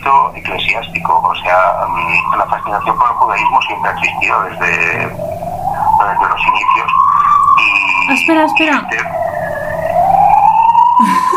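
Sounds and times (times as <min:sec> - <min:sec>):
speech: 0:00.0 - 0:07.1, 0:08.1 - 0:09.3, 0:11.0 - 0:11.2
ambulance siren wailing: 0:00.0 - 0:11.3.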